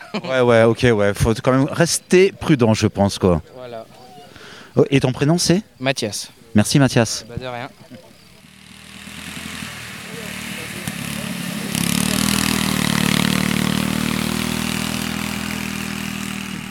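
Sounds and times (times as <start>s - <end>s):
speech: 0.1s - 3.9s, 4.8s - 8.1s
ride-on lawn mower engine revving: 6.3s - 16.6s.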